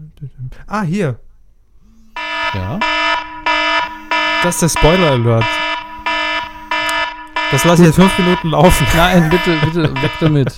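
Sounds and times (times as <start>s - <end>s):
speech: 0.2s - 1.2s, 2.5s - 3.1s, 4.4s - 5.7s, 7.5s - 10.5s
phone alarm clock ringing with buzzy electronic tone: 2.2s - 10.5s
laughter: 8.5s - 10.5s.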